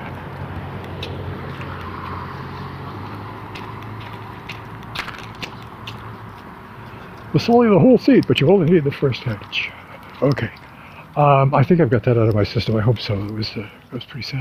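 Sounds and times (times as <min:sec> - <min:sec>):
racing engines roaring at a motor speedway: 0:00.0 - 0:14.3
speech: 0:01.0 - 0:01.7, 0:07.3 - 0:10.6, 0:11.2 - 0:14.3.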